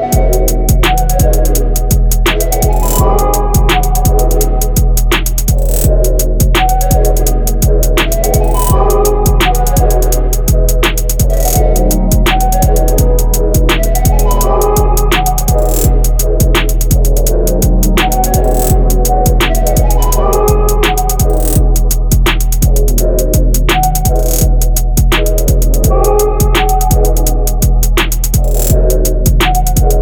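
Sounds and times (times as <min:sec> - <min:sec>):
trap beat high open hi-hat: 0:00.1 - 0:30.0.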